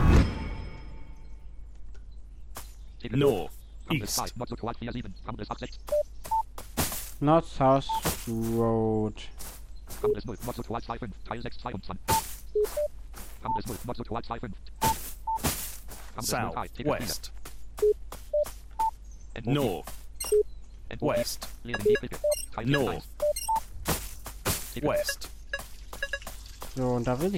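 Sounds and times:
busier bursts of game-like sound: 0.0s - 27.3s
speech: 3.0s - 6.2s, 7.2s - 14.9s, 16.2s - 18.0s, 19.4s - 23.4s, 24.8s - 25.3s, 26.8s - 27.3s
bird call resembling mobile phone electronic beeps: 12.1s - 13.7s, 19.6s - 20.6s, 21.7s - 23.7s, 24.8s - 26.6s.

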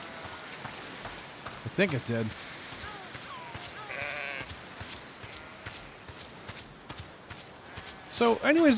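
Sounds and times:
footsteps: 0.0s - 8.7s
speech: 1.7s - 2.5s, 8.2s - 8.7s
sheep bleating while being herded: 2.8s - 6.1s, 7.6s - 8.1s.

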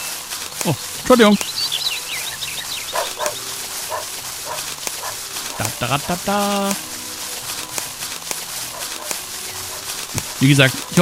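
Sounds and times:
speech: 0.6s - 1.7s, 5.6s - 6.9s, 10.4s - 11.0s
high chirping: 0.7s - 11.0s
dog barking: 2.9s - 5.7s, 8.7s - 9.9s.

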